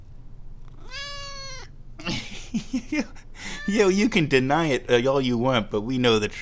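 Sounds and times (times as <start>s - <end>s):
low hum: 0.0s - 6.4s
cat meowing: 0.7s - 1.7s, 3.4s - 3.9s
laughter: 2.0s - 3.7s
speech: 2.1s - 6.4s.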